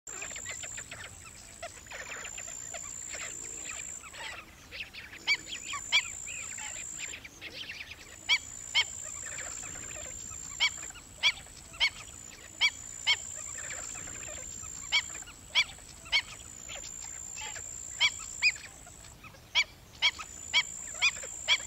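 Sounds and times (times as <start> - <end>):
stilt bird songs: 0.1 - 21.6.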